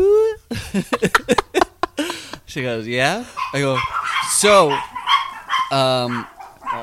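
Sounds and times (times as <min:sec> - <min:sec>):
speech: 0:00.5 - 0:01.4, 0:02.6 - 0:04.9, 0:05.7 - 0:06.3
laughter: 0:00.5 - 0:02.4
guard dogs barking: 0:03.2 - 0:06.8.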